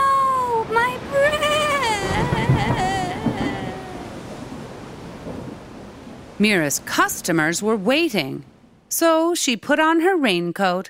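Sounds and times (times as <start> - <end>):
strong gust of wind with a whistling tone: 0.6 - 8.7
speech: 6.4 - 10.8.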